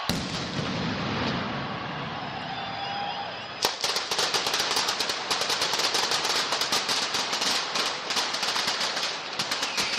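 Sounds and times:
mascletà firecracker gunpowder explosions: 0.0s - 2.7s, 3.4s - 9.9s
crowd roar: 0.0s - 5.4s.

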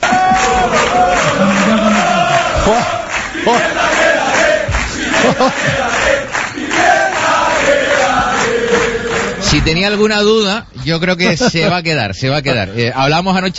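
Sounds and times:
football stadium crowd in Gran Canaria chanting and roaring for players: 0.0s - 9.4s
laughter: 0.2s - 4.0s, 4.8s - 6.3s, 11.2s - 13.0s
speech: 9.6s - 13.5s.

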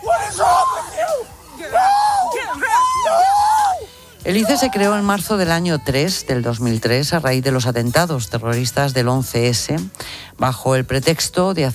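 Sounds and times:
neighbours screaming and yelling in alarm: 0.0s - 5.5s
speech: 4.3s - 11.7s.

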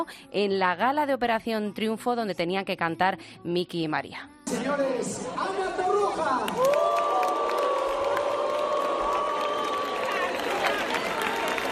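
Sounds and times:
speech: 0.0s - 7.1s
large studio audience booing in a TV studio: 6.6s - 11.7s.

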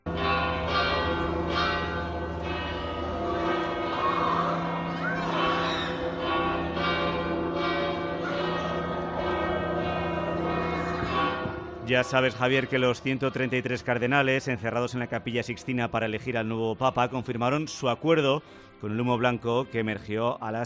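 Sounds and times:
cathedral church bells pealing: 0.0s - 19.7s
children chattering: 0.2s - 14.7s
faint crowd voices: 0.4s - 20.6s
speech: 11.9s - 20.6s.

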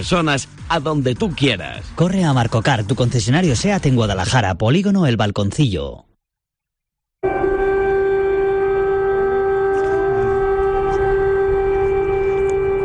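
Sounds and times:
speech: 0.0s - 6.1s
air raid siren wailing: 7.2s - 12.8s.

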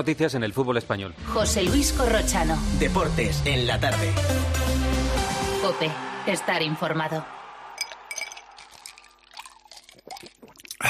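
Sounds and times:
speech: 0.0s - 5.0s, 5.6s - 7.4s
cold drink pouring into a glass over ice: 7.8s - 10.8s.

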